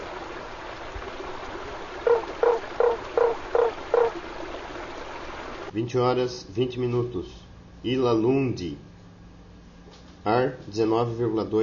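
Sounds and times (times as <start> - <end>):
Lund's tree frog Boana lundii giving throaty notes: 2.0 - 4.3
speech: 5.8 - 8.9, 10.2 - 11.6.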